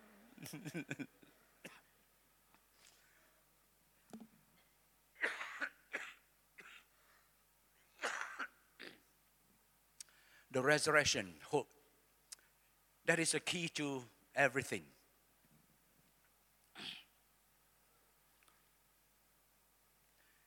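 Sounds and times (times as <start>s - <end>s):
speech: 0.4s - 1.3s, 10.6s - 11.7s, 13.1s - 15.0s
harsh coughing: 5.2s - 6.9s, 8.0s - 9.0s
throat clearing: 8.0s - 9.1s, 16.7s - 17.2s.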